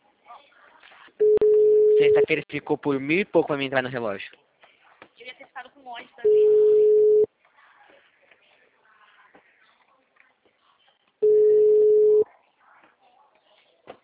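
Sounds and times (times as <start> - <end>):
ringback tone of an unanswered phone call: 1.2 - 2.3, 6.2 - 7.3, 11.2 - 12.2
speech: 2.0 - 4.4.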